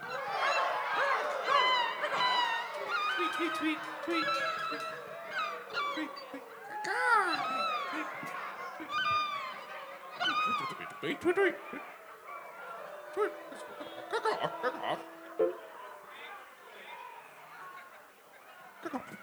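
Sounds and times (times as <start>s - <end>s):
large live concert audience imitating bird calls: 0.0s - 19.2s
laughter: 0.0s - 19.2s.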